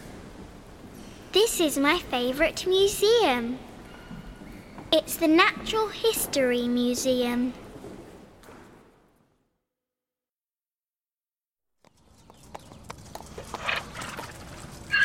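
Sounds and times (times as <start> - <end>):
speech: 1.4 - 3.7, 4.9 - 7.6
donkey hooves clopping on hard ground at a city farm in London: 11.8 - 15.0
faint birdsong: 11.8 - 15.0.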